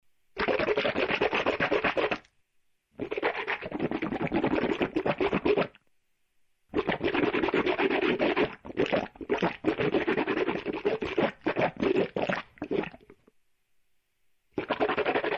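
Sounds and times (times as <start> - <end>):
mouth rinsing: 0.4 - 2.3, 3.0 - 5.8, 6.7 - 13.3, 14.6 - 15.3.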